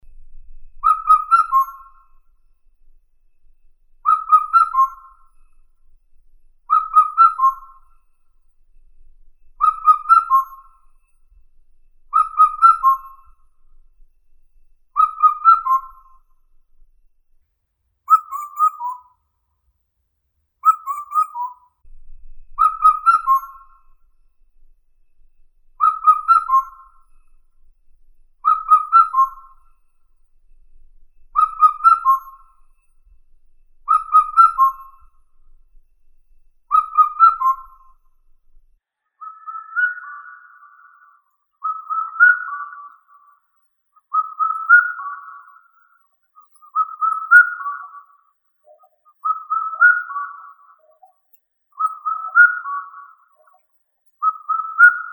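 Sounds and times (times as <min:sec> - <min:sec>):
Indian cuckoo Cuculus micropterus: 0:00.8 - 0:02.3, 0:04.0 - 0:05.6, 0:06.7 - 0:08.0, 0:09.6 - 0:11.0, 0:12.1 - 0:13.6, 0:14.9 - 0:16.4, 0:18.1 - 0:19.2, 0:20.6 - 0:21.7, 0:22.6 - 0:24.1, 0:25.8 - 0:27.4, 0:28.4 - 0:29.8, 0:31.3 - 0:32.8, 0:33.8 - 0:35.3, 0:36.7 - 0:38.1, 0:39.2 - 0:43.4, 0:44.1 - 0:51.2, 0:51.8 - 0:53.6, 0:54.2 - 0:55.1.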